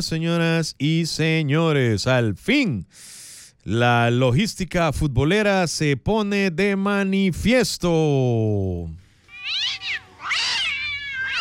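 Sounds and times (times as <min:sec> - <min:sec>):
speech: 0:00.0 - 0:09.6
cats meowing and yowling: 0:09.2 - 0:11.3.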